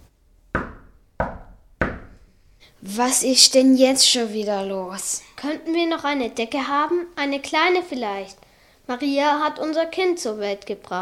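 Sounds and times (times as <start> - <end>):
knocking on a wooden door of an inn: 0.6 - 2.2
speech: 2.8 - 10.9.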